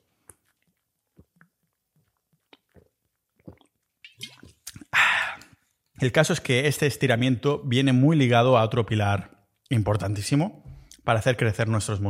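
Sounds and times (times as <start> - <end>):
breathy swallow and exhale: 0.0 - 5.7
person sipping a drink with wet slurping: 0.0 - 5.9
mouth clicks: 2.4 - 5.6
speech: 6.0 - 12.0.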